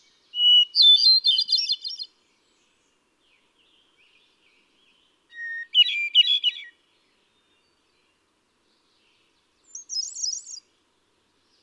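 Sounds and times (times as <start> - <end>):
hermit thrush singing: 0.0 - 2.7, 3.3 - 6.8, 8.9 - 10.7.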